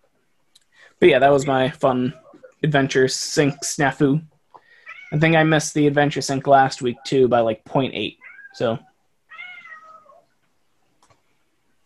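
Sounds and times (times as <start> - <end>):
speech: 1.0 - 4.3, 5.1 - 8.9
cat meowing: 4.8 - 5.2, 8.2 - 8.6, 9.3 - 10.3.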